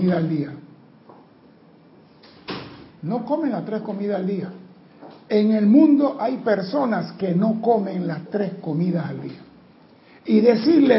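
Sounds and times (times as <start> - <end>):
speech: 0.0 - 0.7, 3.0 - 4.6, 5.3 - 9.5, 10.3 - 10.9
door pushed shut with a rolling scrape and bump: 2.2 - 3.0.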